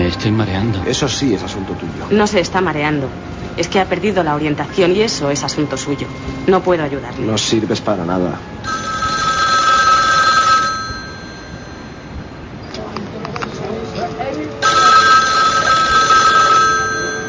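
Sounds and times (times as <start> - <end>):
voices: 0.0 - 8.6, 12.6 - 17.2
speech: 0.2 - 9.0
telephone ringing: 8.6 - 12.6, 14.6 - 17.2.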